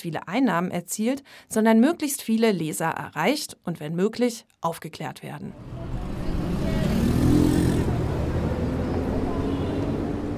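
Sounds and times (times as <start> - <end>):
speech: 0.0 - 6.1
cars driving by: 5.5 - 10.3
city street traffic: 5.5 - 10.3.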